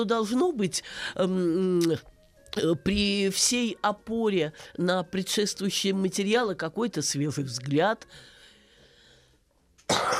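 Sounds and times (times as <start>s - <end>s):
speech: 0.0s - 8.4s
soft breathing: 8.0s - 9.7s
sharp forceful sneeze: 9.9s - 10.1s.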